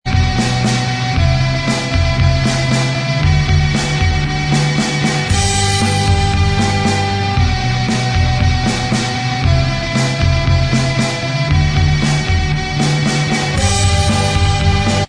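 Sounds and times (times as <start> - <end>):
instrumental music track: 0.1 - 15.0.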